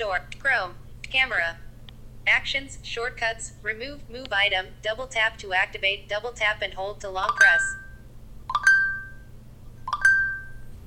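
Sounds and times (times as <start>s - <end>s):
speech: 0.0s - 7.8s
smartphone default notification chime: 7.3s - 9.3s, 9.9s - 10.7s.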